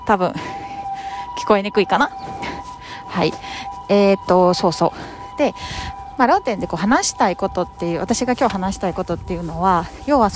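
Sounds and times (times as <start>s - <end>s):
ambulance siren wailing outside: 0.0s - 10.3s
speech: 0.1s - 0.6s, 1.4s - 2.4s, 3.2s - 10.3s.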